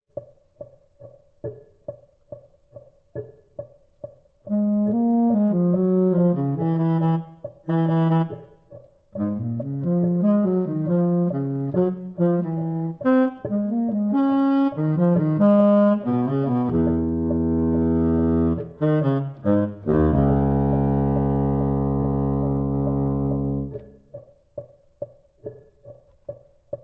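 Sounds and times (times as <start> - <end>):
latin jazz baritone saxophone: 4.5 - 8.6, 9.2 - 24.0.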